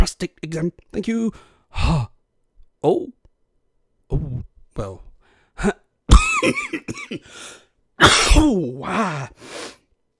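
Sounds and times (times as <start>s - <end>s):
speech: 0.2s - 2.1s, 2.8s - 3.2s, 4.1s - 5.8s, 6.4s - 9.8s
harsh throaty coughing: 5.6s - 7.4s, 8.0s - 9.4s.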